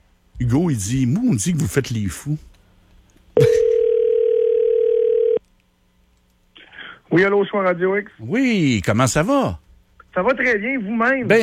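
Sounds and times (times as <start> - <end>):
speech: 0.4 - 2.5, 7.2 - 9.6, 10.2 - 11.4
telephone dial tone while a call is placed: 3.6 - 5.4.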